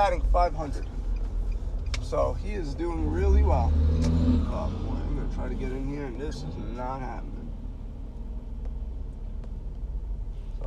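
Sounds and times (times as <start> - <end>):
speech: 0.0 - 1.0, 2.1 - 7.3
road traffic heard from inside a car: 0.0 - 10.6.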